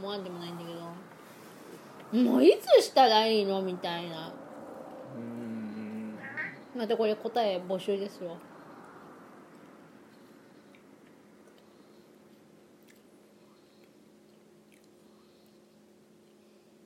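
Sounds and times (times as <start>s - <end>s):
steady low hum: 0.0s - 16.8s
speech: 0.1s - 1.1s, 2.1s - 4.4s, 6.8s - 8.5s
person chewing food with wet clicks and squishes: 10.6s - 16.5s.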